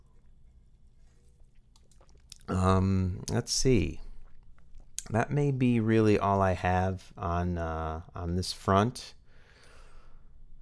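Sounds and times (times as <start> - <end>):
person sipping water: 0.0 - 3.3, 4.0 - 5.1
low hum: 0.0 - 10.6
wet mouth clicks: 1.1 - 2.5, 4.1 - 5.1
gulping: 1.8 - 3.4
speech: 2.5 - 4.0, 5.1 - 9.2.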